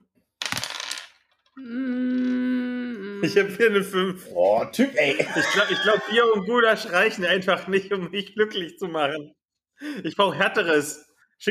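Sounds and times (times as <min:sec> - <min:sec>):
dice tumbling across a hard surface: 0:00.4 - 0:01.6, 0:02.2 - 0:02.4
speech: 0:01.6 - 0:02.0, 0:03.2 - 0:11.5
laughter: 0:04.8 - 0:07.4.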